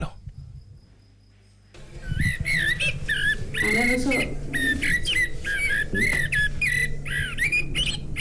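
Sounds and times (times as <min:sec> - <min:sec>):
faint low hum: 0:00.0 - 0:08.1
blackbird singing fluty warbling whistled phrases: 0:01.8 - 0:08.1
speech: 0:03.9 - 0:04.4.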